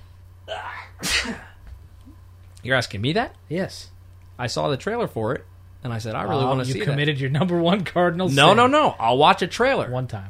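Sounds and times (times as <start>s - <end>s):
faint low hum: 0.0s - 10.2s
sneeze: 0.5s - 1.6s
speech: 2.6s - 10.2s.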